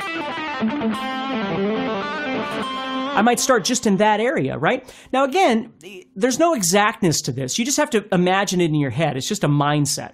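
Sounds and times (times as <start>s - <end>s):
distorted electric guitar playing a melodic line: 0.0s - 4.7s
speech: 3.2s - 10.1s.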